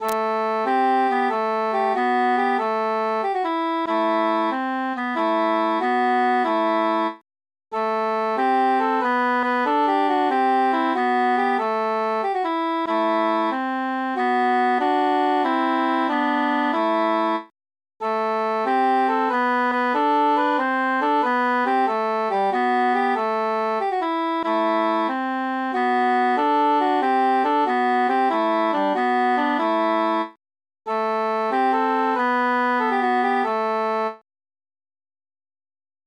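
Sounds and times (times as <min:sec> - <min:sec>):
transposed piece of music with the altus part muted: 0:00.0 - 0:07.2, 0:07.8 - 0:34.2.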